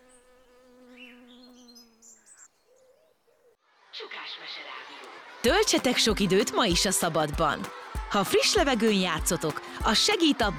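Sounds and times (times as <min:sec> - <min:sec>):
bees and tiny insects buzzing in a sunny flower-filled garden: 0:00.0 - 0:02.9
birds chirping in a garden: 0:00.0 - 0:05.5
laughter: 0:03.7 - 0:10.5
speech: 0:04.0 - 0:10.5.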